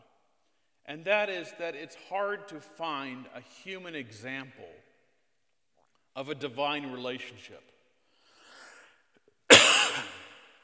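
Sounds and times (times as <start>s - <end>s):
speech: 0.9s - 4.9s, 6.2s - 7.8s
loud harsh cough at the microphone: 9.5s - 10.5s.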